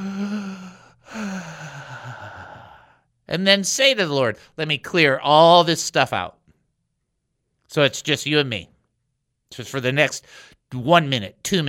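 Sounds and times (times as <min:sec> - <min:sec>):
deep breath taken deliberately as a demonstration: 0:00.0 - 0:03.1, 0:10.2 - 0:10.6
speech: 0:03.3 - 0:06.4, 0:07.7 - 0:08.7, 0:09.5 - 0:11.6.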